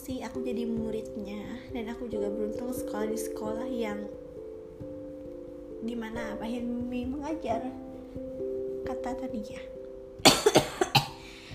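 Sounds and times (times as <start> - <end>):
speech: 0.1 - 4.2, 5.8 - 9.7
harsh coughs: 10.2 - 11.3.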